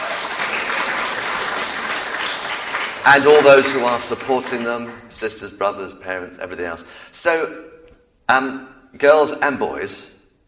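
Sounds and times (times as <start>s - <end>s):
audience applause: 0.0s - 5.6s
speech: 3.0s - 10.1s.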